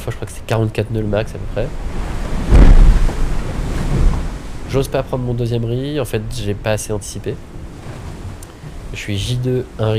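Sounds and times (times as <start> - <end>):
speech: 0.0 - 2.1, 4.7 - 7.6, 8.9 - 9.9
steady rush of waves and surf at sea: 0.1 - 9.9
strong wind gusts buffeting the microphone at sea: 1.0 - 9.9.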